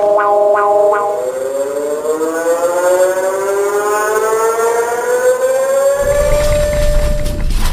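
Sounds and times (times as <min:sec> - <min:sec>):
civil-defense style earthquake warning siren wailing: 0:00.0 - 0:07.6
harsh noisy broadband earthquake alarm: 0:00.0 - 0:07.6.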